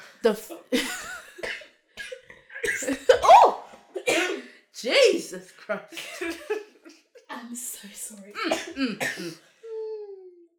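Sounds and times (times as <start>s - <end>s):
speech: 0.2s - 1.0s, 4.8s - 6.7s, 7.4s - 9.5s
raspy cough: 1.3s - 3.3s, 3.9s - 4.5s, 8.4s - 9.4s.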